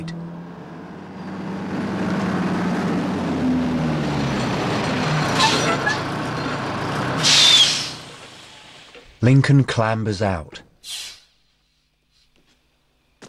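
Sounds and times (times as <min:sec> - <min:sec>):
heavy rig truck with twin exhaust pipes engine rumble at night: 0:00.0 - 0:09.3
truck air brake hiss: 0:07.2 - 0:09.0, 0:10.8 - 0:11.4
speech: 0:09.2 - 0:11.0.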